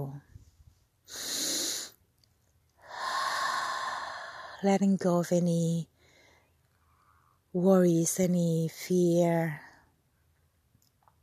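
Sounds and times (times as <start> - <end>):
deep breaths during a relaxation meditation by the ocean: 2.8 - 4.6, 6.0 - 7.4
speech: 4.6 - 5.9, 7.6 - 9.7.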